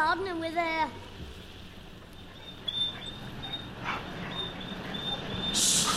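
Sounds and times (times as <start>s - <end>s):
speech: 0.0s - 1.1s
steady hiss: 0.0s - 5.9s
dog whining softly: 2.2s - 5.9s.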